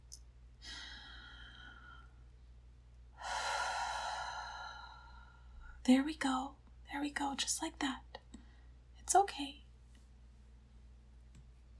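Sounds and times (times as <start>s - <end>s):
low steady hum: 0.0s - 11.7s
slow deep human breathing: 0.6s - 2.3s, 3.2s - 5.8s
speech: 5.8s - 8.1s, 9.1s - 9.6s.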